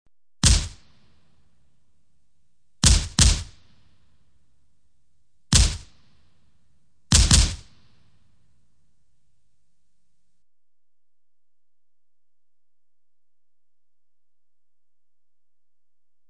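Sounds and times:
automatic gunfire bursts: 2.8s - 3.6s, 5.5s - 5.9s, 7.1s - 7.7s.

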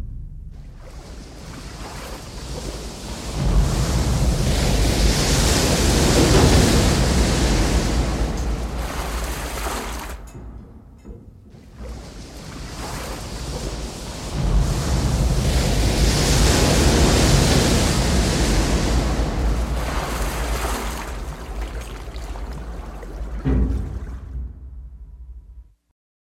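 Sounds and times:
water through submarine hatches: 0.6s - 24.6s.

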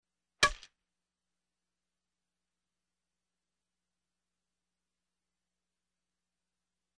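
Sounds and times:
dry badminton shuttlecock hit: 0.4s - 0.7s.

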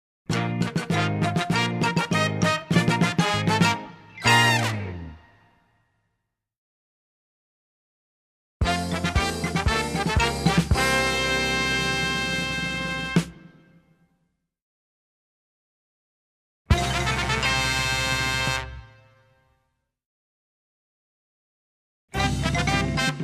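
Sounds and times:
playful brass fanfare: 0.3s - 5.4s, 8.6s - 13.8s, 16.7s - 19.4s, 22.2s - 23.2s.

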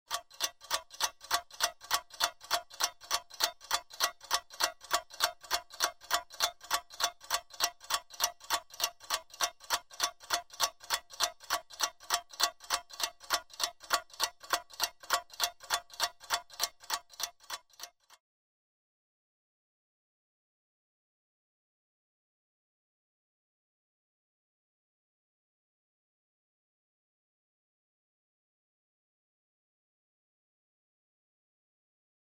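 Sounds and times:
wall clock ticking: 0.1s - 18.2s.

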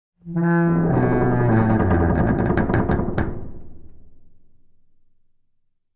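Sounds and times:
echoing creak: 0.3s - 4.0s.

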